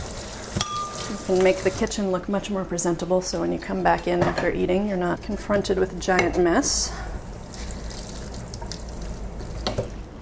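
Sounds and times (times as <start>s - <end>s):
tap water running in a kitchen sink: 0.0s - 2.0s, 6.1s - 10.1s
speech: 1.2s - 7.1s.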